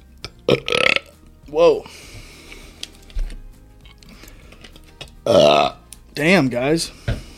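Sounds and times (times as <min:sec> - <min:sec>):
speech: 0:00.5 - 0:00.9, 0:01.5 - 0:02.1, 0:05.3 - 0:07.0
loud croaky burp: 0:00.5 - 0:01.1, 0:05.2 - 0:05.8.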